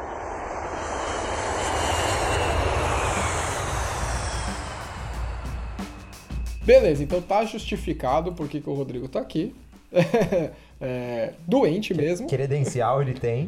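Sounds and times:
airplane engine roar: 0.0s - 8.7s
speech: 6.7s - 13.4s
laughter: 10.0s - 10.6s.

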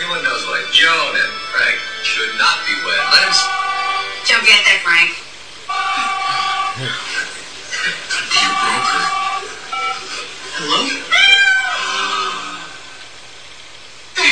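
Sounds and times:
voices from a TV cat food commercial: 0.0s - 5.3s, 5.9s - 12.6s
speech: 0.8s - 3.6s, 4.3s - 5.8s
cat meowing: 10.8s - 12.6s.

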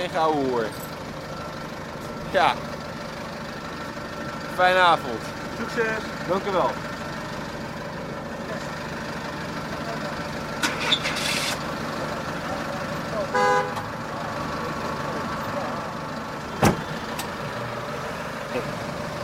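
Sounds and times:
steady traffic rumble: 0.0s - 19.2s
speech: 0.1s - 0.9s, 2.3s - 2.7s, 4.6s - 6.9s
white van horn honk: 13.2s - 14.0s.

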